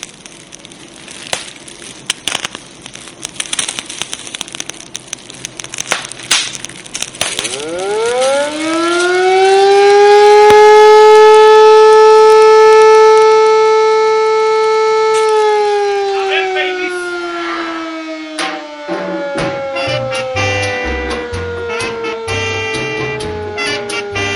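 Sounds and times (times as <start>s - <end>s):
wailing alarm siren: 7.4s - 24.3s.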